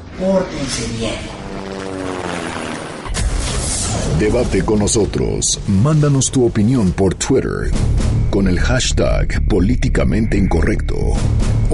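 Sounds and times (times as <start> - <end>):
helicopter flying: 0.0 - 4.2
speech: 0.2 - 2.1, 4.2 - 11.7.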